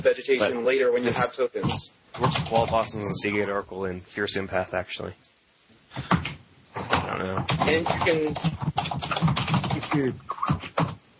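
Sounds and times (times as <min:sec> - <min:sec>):
speech: 0:00.0 - 0:05.3, 0:05.9 - 0:10.4
loud typing on a computer keyboard: 0:02.2 - 0:02.8, 0:06.1 - 0:11.0.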